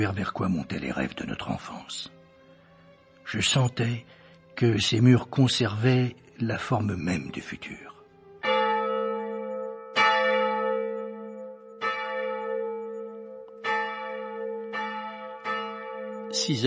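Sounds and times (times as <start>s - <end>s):
speech: 0.0s - 2.2s, 3.3s - 8.0s, 16.4s - 16.6s
church bell tolling above a cloister courtyard: 8.4s - 16.6s.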